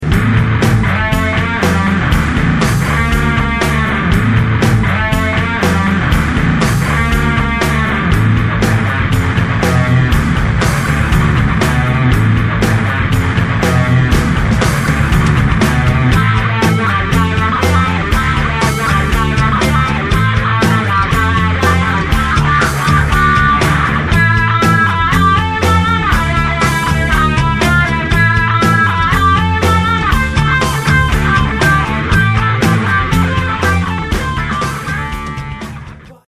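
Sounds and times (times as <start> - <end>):
lead guitar: 0.0 - 36.2.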